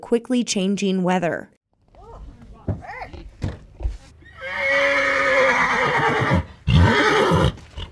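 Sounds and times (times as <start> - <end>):
speech: 0.1 - 1.6
horse whinnying at rodeo grounds in Montana: 4.2 - 7.8.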